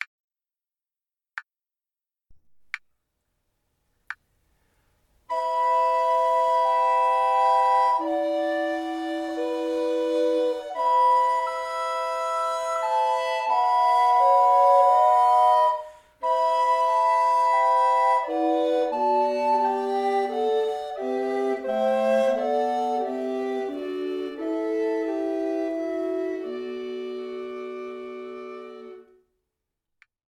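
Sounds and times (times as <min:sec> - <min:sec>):
recorder playing: 0:05.3 - 0:29.2
SATB choir singing: 0:18.3 - 0:27.0.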